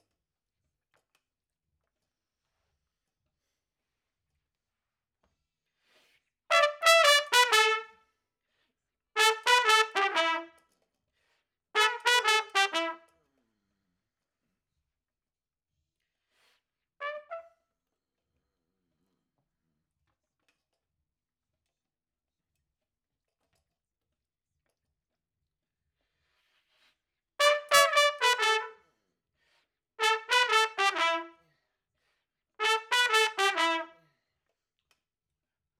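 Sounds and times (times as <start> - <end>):
trumpet: 6.5 - 8.0, 9.2 - 10.6, 11.8 - 13.1, 17.0 - 17.6, 27.4 - 28.9, 30.0 - 31.4, 32.6 - 34.1.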